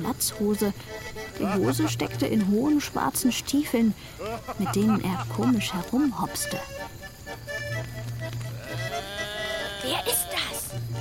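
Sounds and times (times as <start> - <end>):
speech: 0.1 - 7.0
laughter: 1.4 - 2.2, 4.2 - 5.8, 8.5 - 10.7
billy goat bleating: 4.2 - 5.6, 8.2 - 10.7.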